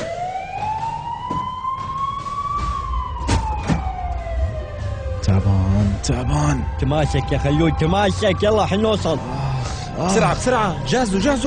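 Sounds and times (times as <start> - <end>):
ambulance siren wailing: 0.0 - 11.4
speech: 5.3 - 11.4.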